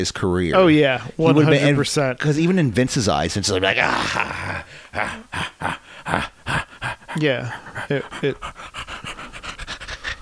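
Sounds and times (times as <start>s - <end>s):
speech: 0.0s - 6.6s, 7.2s - 8.9s
person imitating a panting dog: 4.2s - 10.2s.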